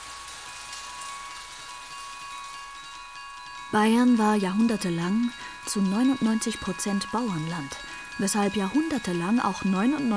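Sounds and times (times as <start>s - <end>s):
steady rain falling: 0.0s - 10.1s
speech: 3.7s - 10.1s.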